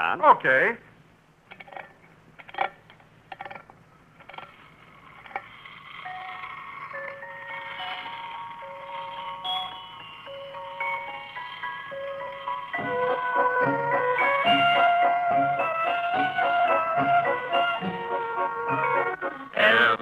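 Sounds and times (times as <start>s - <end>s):
wind-up toy merry-go-round clicks: 1.5s - 18.1s
wind-up toy merry-go-round spinning and playing a tinkling melody: 4.8s - 20.0s.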